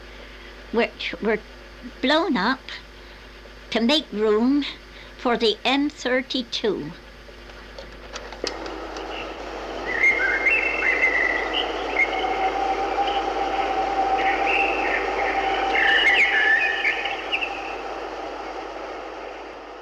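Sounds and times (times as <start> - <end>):
speech: 0.7 - 2.9, 3.7 - 7.0
steady background tone: 8.5 - 19.7
blackbird singing fluty warbled phrases: 9.9 - 12.4, 14.2 - 17.8.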